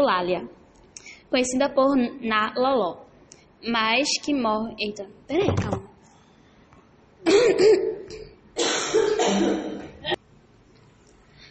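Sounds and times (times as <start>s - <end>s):
speech: 0.0s - 0.6s, 1.3s - 3.0s, 3.6s - 5.9s, 7.5s - 8.2s
person clearing throat: 7.2s - 10.2s.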